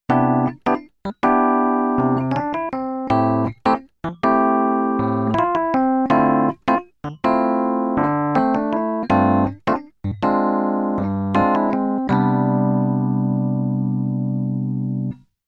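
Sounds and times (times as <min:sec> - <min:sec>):
keyboard pops piano: 0:00.0 - 0:15.2.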